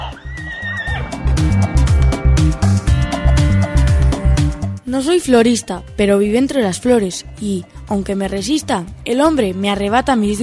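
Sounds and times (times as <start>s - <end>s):
horse whinnying: 0.0s - 1.3s
loud rhythmic musical backing with steady beat: 0.0s - 10.4s
speech: 4.9s - 10.4s.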